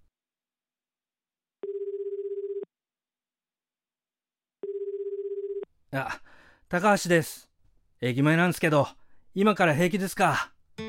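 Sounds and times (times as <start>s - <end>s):
mobile phone ringback tone while calling a private taxi: 1.6s - 2.7s, 4.6s - 5.7s
speech: 5.9s - 10.5s.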